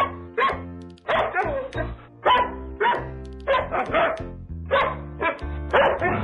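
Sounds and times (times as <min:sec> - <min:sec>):
dog barking to a bouncy tune: 0:00.0 - 0:06.2
low musical backing: 0:00.0 - 0:06.2.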